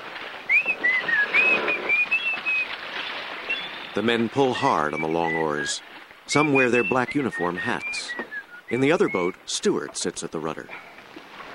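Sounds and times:
man whistling a wavering high melody to call up a wind at sea: 0.5 - 2.7, 4.7 - 9.4
speech: 4.0 - 10.9.

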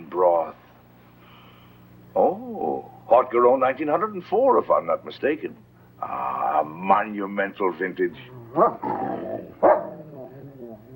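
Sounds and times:
speech: 3.2 - 9.6
dog barking: 8.6 - 8.8, 9.6 - 10.0.

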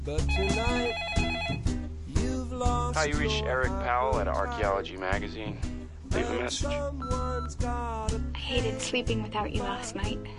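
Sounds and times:
speech: 0.1 - 1.7, 2.6 - 10.3
office telephone ringing with a warbling electronic trill: 0.3 - 1.7.

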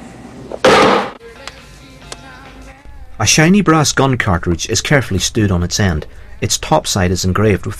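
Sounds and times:
knife slammed down on a chopping board in a kitchen: 0.6 - 1.2
speech: 3.2 - 7.7.

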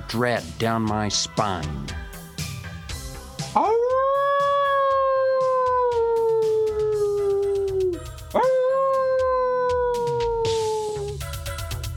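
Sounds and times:
speech: 0.1 - 2.0, 3.6 - 3.8, 8.4 - 8.6
coyotes howling in the evening: 3.6 - 11.2.

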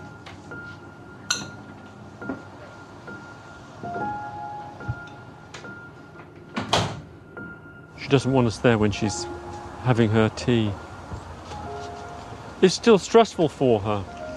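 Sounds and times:
back door to the garden opening with a click: 6.6 - 7.0
back door pulled shut with a fuller thump: 6.6 - 7.1
speech: 8.1 - 10.8, 12.6 - 14.2.

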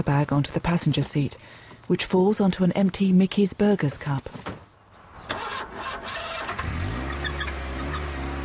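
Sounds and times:
speech: 0.0 - 4.5
old grey car engine starting: 5.2 - 8.4.

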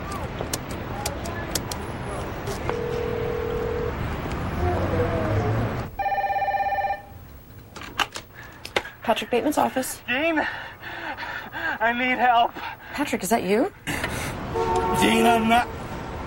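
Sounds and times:
steady street traffic noise: 0.0 - 16.2
public telephone keypad tones on a street: 2.7 - 3.9, 6.0 - 7.1
long stacked telephone tone: 2.7 - 4.2, 5.7 - 7.3, 14.5 - 15.9
speech: 9.1 - 10.7, 11.8 - 13.8, 14.5 - 15.8.

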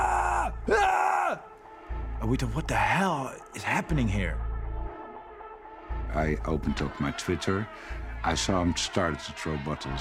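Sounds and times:
crowd screaming: 0.0 - 1.4
speech: 2.2 - 4.4, 6.1 - 9.9.

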